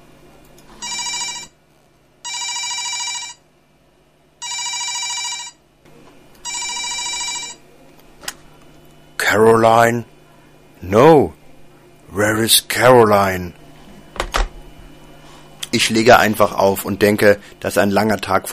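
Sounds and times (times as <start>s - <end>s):
telephone ringing: 0.8s - 1.6s, 2.2s - 3.4s, 4.4s - 5.6s, 6.4s - 7.6s
speech: 9.4s - 10.1s, 10.8s - 11.4s, 12.1s - 13.6s, 15.7s - 18.5s.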